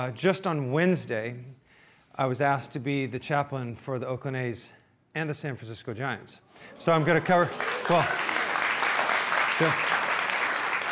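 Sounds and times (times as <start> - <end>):
speech: 0.0 - 1.6, 2.2 - 8.4, 9.6 - 10.0
audience applauding: 6.8 - 10.8.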